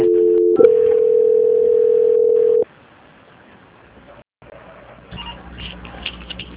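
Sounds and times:
telephone line tone while a call is being transferred: 0.0 - 2.6.

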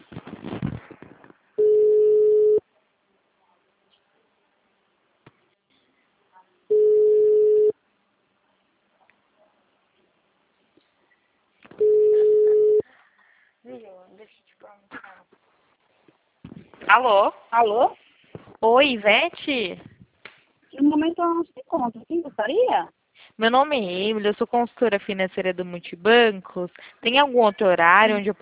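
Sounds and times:
telephone ringing tone on an outgoing call: 1.6 - 2.6, 6.7 - 7.7, 11.8 - 12.8
speech: 17.0 - 18.0, 18.6 - 19.9, 20.8 - 28.3.

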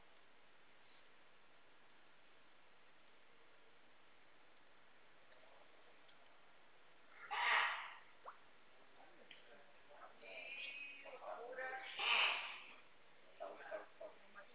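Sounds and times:
loud harsh sneezes: 7.2 - 8.1, 11.9 - 12.8
faint murmuring: 8.9 - 14.5.

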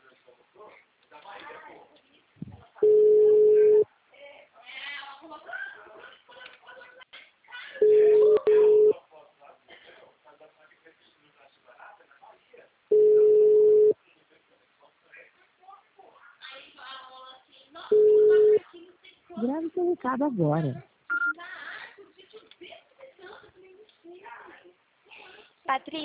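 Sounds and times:
ringback tone of an unanswered telephone call: 2.8 - 3.8, 7.8 - 8.9, 12.9 - 14.0, 17.9 - 18.6, 21.1 - 21.3
speech: 20.0 - 20.9, 25.8 - 26.0.

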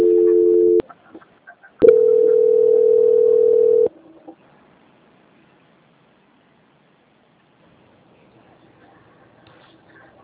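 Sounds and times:
telephone line tones during call transfer: 0.0 - 0.8, 1.8 - 3.9.

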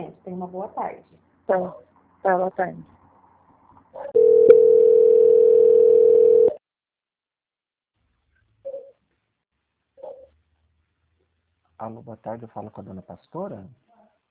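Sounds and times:
speech: 0.4 - 3.0, 11.8 - 13.8
telephone line tone while a caller is held and transferred: 4.2 - 6.6.

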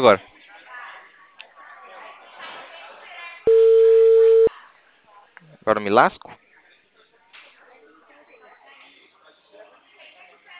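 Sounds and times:
speech: 0.0 - 0.3, 5.6 - 6.4
phone ringback tone on an unanswered return call: 3.5 - 4.5.

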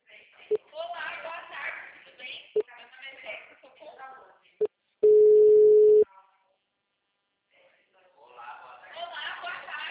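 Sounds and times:
telephone busy tone after a dropped call: 5.0 - 6.0.

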